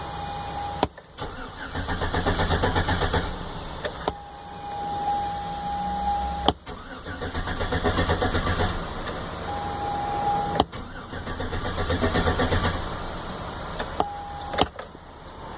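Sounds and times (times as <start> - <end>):
Sierra engine cranking but not starting: 0.2 - 15.5.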